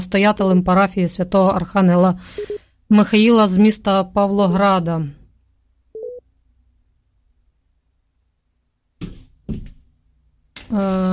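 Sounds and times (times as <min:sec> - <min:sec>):
speech: 0:00.0 - 0:05.2, 0:10.7 - 0:11.1
faint hum: 0:00.0 - 0:11.1
single short electronic telephone tone while reconnecting a dropped call: 0:02.4 - 0:02.6, 0:06.0 - 0:06.2.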